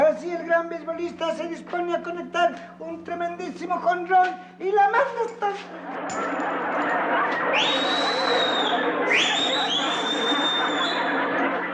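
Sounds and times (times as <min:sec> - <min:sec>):
speech: 0:00.5 - 0:10.8
laughter: 0:05.5 - 0:11.7
person's shrill swooping whistles at the umpire: 0:07.5 - 0:11.1.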